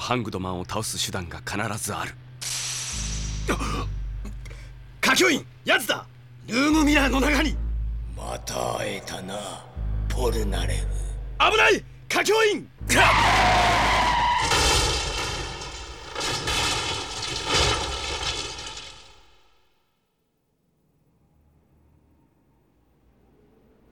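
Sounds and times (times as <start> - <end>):
speech: 0.1 - 2.2, 3.5 - 4.0, 5.2 - 7.6, 8.2 - 13.7
car tires skidding as a car brakes suddenly: 1.4 - 19.3
sharp knocking impacts: 2.9 - 19.3.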